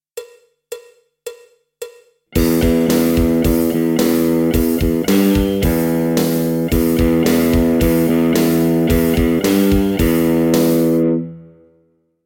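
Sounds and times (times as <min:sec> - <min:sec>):
metal rock electric guitar lick: 0:02.4 - 0:11.6.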